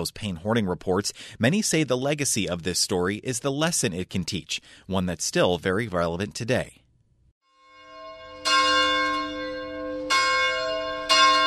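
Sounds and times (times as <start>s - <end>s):
speech: 0.0s - 6.8s
church bells ringing: 7.5s - 11.4s.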